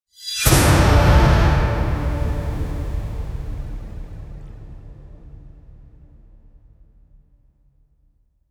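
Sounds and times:
crystal magic spell impact for a fighting game: 0:00.2 - 0:04.2.

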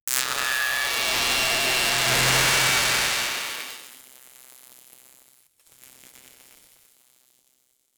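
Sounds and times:
electrocuted lightning effect: 0:00.2 - 0:03.9.

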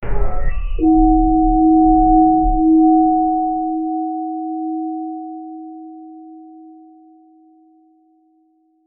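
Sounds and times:
eerie nautical ship bell ringing: 0:00.8 - 0:05.5.

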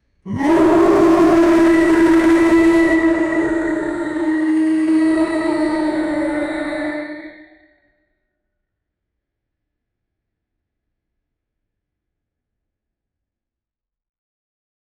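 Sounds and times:
fantasy monster roaring after injury: 0:00.3 - 0:07.5.

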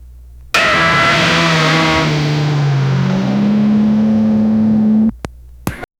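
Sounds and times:
aggressive hypercar burnout: 0:00.6 - 0:05.1.

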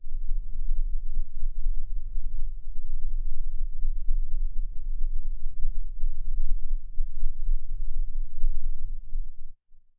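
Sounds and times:
low vibration shaking a room: 0:00.0 - 0:09.6.

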